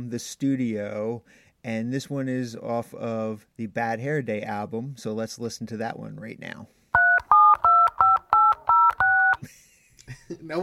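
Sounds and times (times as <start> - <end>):
speech: 0.0 - 6.8, 10.3 - 10.6
touch-tone dialing of a telephone number: 7.0 - 9.4.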